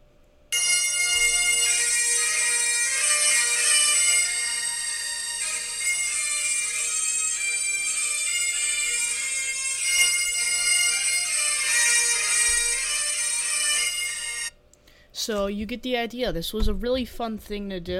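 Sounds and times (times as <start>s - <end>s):
bagpipes with three drones playing: 0.5s - 14.6s
speech: 15.2s - 17.9s.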